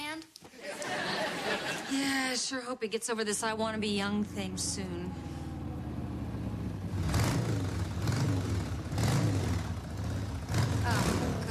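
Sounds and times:
laughter: 0.5s - 2.4s
speech: 1.9s - 5.3s
motorcycle engine revving: 3.4s - 11.5s.

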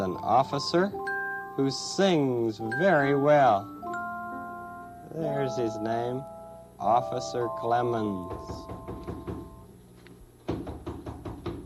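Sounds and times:
speech: 0.1s - 1.0s, 1.6s - 3.8s, 5.1s - 9.4s
knocking on a front door: 8.2s - 9.6s, 10.4s - 11.6s.

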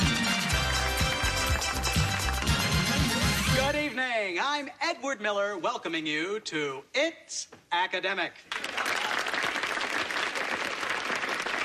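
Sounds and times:
studio audience applause: 0.0s - 3.7s, 8.5s - 11.6s
speech: 4.6s - 9.0s.

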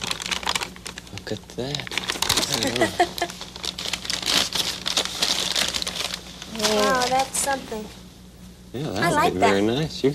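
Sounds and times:
paper bag crinkling while being turned inside out: 0.0s - 7.6s
speech: 1.3s - 3.3s, 6.6s - 8.0s, 8.7s - 10.1s.

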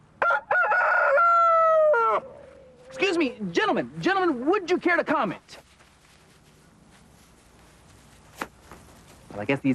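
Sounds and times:
rooster crowing on a farm: 0.2s - 2.8s
speech: 3.2s - 5.6s, 9.4s - 9.7s.

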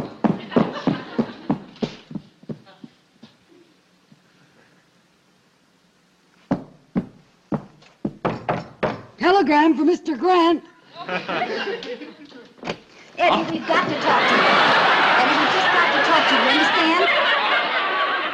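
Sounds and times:
laughter: 0.1s - 2.0s, 10.9s - 12.6s, 13.2s - 18.3s
rapid loud knocking on a door: 8.1s - 9.1s
speech: 9.3s - 12.1s, 13.2s - 17.4s.

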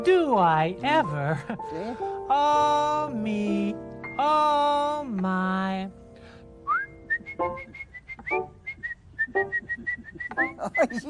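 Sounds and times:
speech: 0.0s - 6.0s, 7.4s - 8.4s, 9.3s - 11.0s
person whistling a quick tune: 6.7s - 11.0s.

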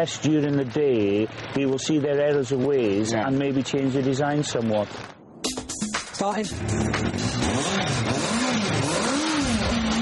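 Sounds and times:
speech: 0.0s - 5.2s, 6.2s - 8.1s
engine running and revving: 6.4s - 9.9s.

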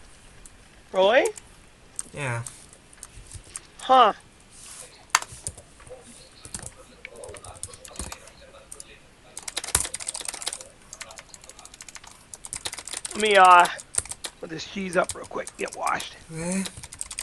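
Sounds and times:
speech: 0.9s - 1.4s, 2.1s - 2.6s, 3.9s - 4.2s, 13.2s - 13.8s, 14.4s - 16.8s
typing on a keyboard: 6.5s - 16.0s, 16.6s - 17.2s.

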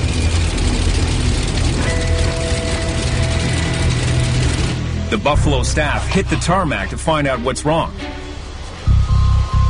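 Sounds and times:
DC-3 with two air-cooled radial piston engines taxiing at night: 0.0s - 7.1s
faint tonal whine: 0.0s - 9.6s
speech: 5.1s - 8.2s.

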